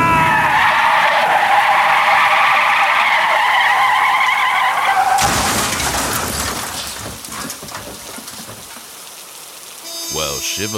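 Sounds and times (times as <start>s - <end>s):
car tire screech with failed brakes: 0.0s - 6.5s.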